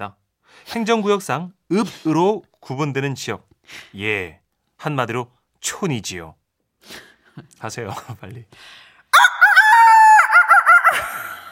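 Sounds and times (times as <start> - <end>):
speech: 0.0 - 9.3
person imitating rooster crowing: 9.2 - 11.5.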